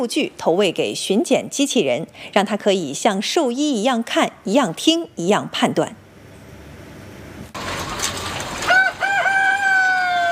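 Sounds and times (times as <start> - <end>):
speech: 0.0 - 6.0
constant chicken farm noise: 6.3 - 10.3
rooster crowing in an egg breeder chicken farm: 8.6 - 10.3.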